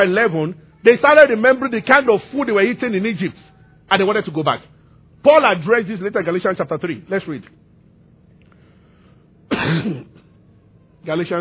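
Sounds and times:
speech: 0.0 - 7.6, 9.6 - 10.1, 11.0 - 11.4
harsh raspy throat-clearing cough: 9.5 - 10.2.

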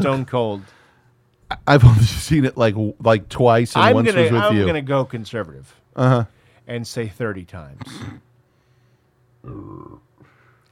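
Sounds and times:
speech: 0.0 - 0.8, 1.5 - 8.2, 9.4 - 10.1
person burping: 7.8 - 8.2, 9.4 - 10.2.

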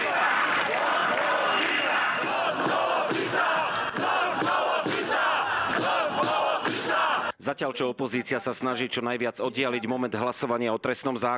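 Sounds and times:
thousands of protesters chanting and shouting in unison on a square in Košice: 0.0 - 7.4
speech: 7.4 - 11.3.

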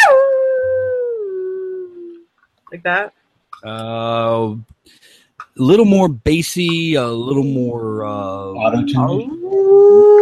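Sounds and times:
person imitating a long eerie howl: 0.0 - 2.2, 8.0 - 10.2
speech: 2.8 - 10.2.

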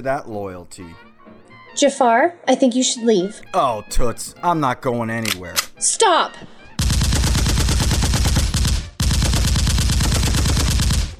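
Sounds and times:
speech: 0.0 - 1.1, 1.8 - 6.5
rapid gunfire from next door: 6.8 - 11.1.

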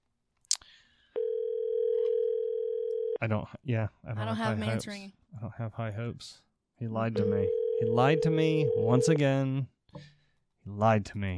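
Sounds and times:
telephone ringing tone on an outgoing phone call: 1.2 - 3.2, 7.2 - 9.2
speech: 3.2 - 11.3.

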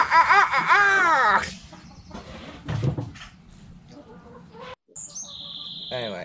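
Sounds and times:
flock of chickens clucking and squawking: 0.0 - 6.0
higher-pitched chicken clucks and chirping: 1.4 - 2.6, 3.8 - 6.2.

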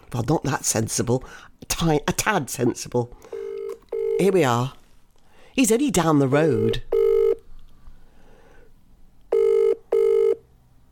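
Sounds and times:
speech: 0.1 - 3.3, 4.2 - 4.8, 5.6 - 6.9
telephone ringing out on an outgoing call: 3.3 - 4.4, 6.6 - 7.4, 9.3 - 10.4.

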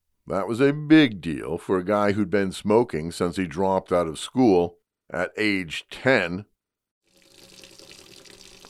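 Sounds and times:
speech: 0.3 - 6.5
kitchen tap water running into the sink while rinsing dishes: 7.1 - 8.6.

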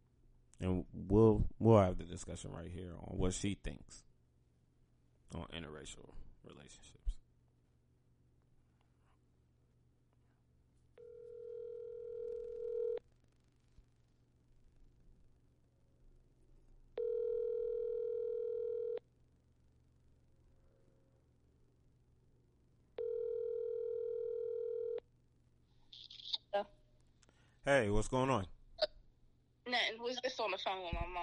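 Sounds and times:
speech: 0.6 - 4.1, 5.3 - 7.2, 27.7 - 28.9, 29.7 - 31.2
phone ringback tone of an outgoing call: 11.0 - 13.0, 17.0 - 19.0, 23.0 - 25.0.

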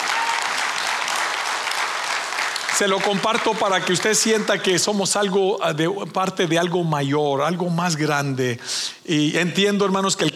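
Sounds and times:
church congregation applauding: 0.0 - 4.7
speech: 2.8 - 10.3.

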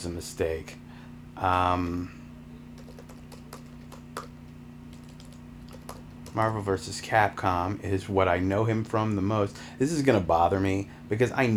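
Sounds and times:
speech: 0.0 - 0.8, 1.4 - 2.2, 6.3 - 11.5
low hum: 0.0 - 11.5
faint keystrokes on a computer keyboard: 2.8 - 6.4.

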